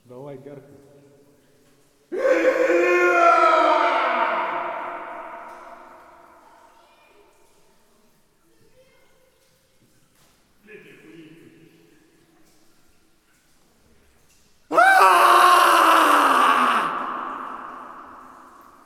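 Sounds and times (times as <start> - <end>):
screams of agony in a cave: 2.1 - 6.2, 14.7 - 18.8.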